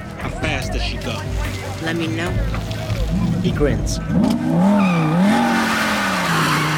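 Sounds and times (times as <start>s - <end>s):
speech: 0.7s - 5.6s
Shelby Cobra convertible sports car engine roar: 1.0s - 6.7s
sustained tire squeal of a Shelby Cobra convertible sports car: 4.4s - 6.7s.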